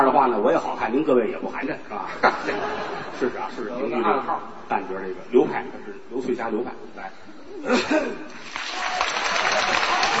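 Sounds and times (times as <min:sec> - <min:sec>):
speech: 0:00.1 - 0:08.4
laughter: 0:02.1 - 0:03.7, 0:07.6 - 0:08.5
audience applause at a live comic performance: 0:08.3 - 0:10.1.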